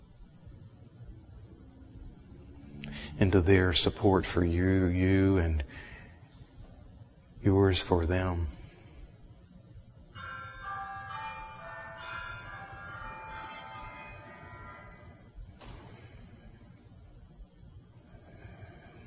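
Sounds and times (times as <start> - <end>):
speech: 3.2 - 5.8, 7.4 - 8.6
little bell ringing to rouse a group of practitioners: 10.2 - 15.2.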